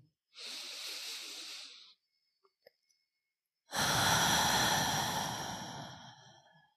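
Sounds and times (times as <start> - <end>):
slow deep breath through the nose: 0.4 - 2.0, 3.7 - 6.6.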